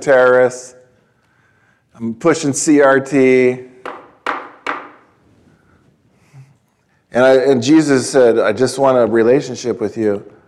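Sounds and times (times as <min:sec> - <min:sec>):
speech: 0:00.0 - 0:00.8, 0:02.0 - 0:04.0, 0:07.1 - 0:10.4
knocking on a wooden surface: 0:03.8 - 0:05.0.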